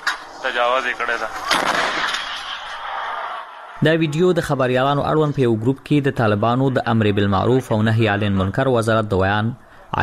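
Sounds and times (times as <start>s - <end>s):
speech: 0.4s - 2.2s, 3.8s - 10.0s
locally made cannon firing in Kunar: 1.4s - 3.8s.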